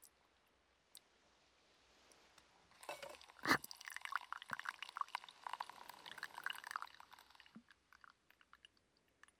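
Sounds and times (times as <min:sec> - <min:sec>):
hot water spilling while poured over coffee: 0:02.8 - 0:09.3.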